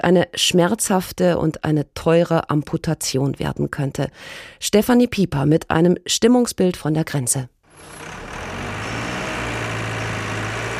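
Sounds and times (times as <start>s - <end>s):
speech: 0.0s - 8.0s
forklifts moving shipped timber in a harbour: 7.7s - 10.7s.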